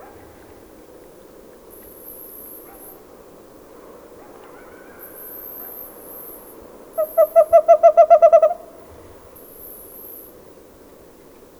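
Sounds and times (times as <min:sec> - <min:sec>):
bird hooting: 0:07.0 - 0:09.0.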